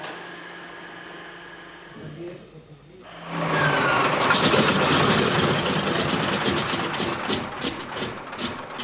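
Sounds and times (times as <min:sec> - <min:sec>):
old aircraft engine starting up and roaring: 0:03.1 - 0:08.8.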